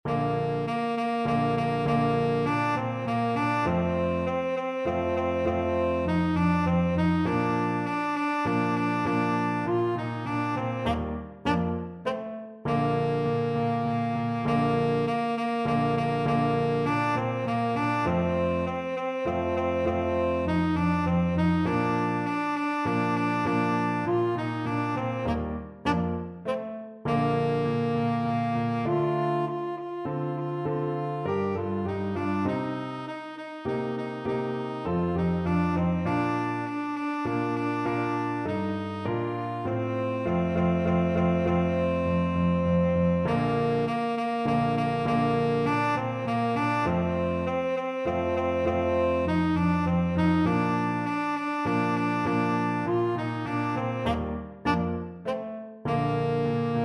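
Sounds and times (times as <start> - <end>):
tenor saxophone fanfare: 0.1 - 56.8.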